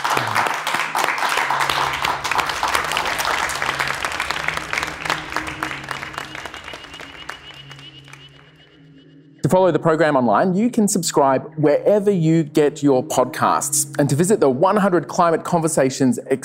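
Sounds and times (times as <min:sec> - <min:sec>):
audience applause: 0:00.0 - 0:08.7
low hum or murmur: 0:01.5 - 0:09.5
speech: 0:09.5 - 0:16.4.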